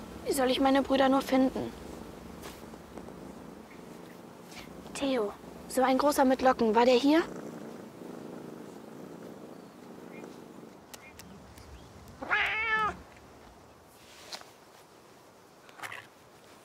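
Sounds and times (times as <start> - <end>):
cat purring: 0.0 - 14.2
speech: 0.3 - 1.8, 5.0 - 7.4
cat meowing: 12.2 - 13.0.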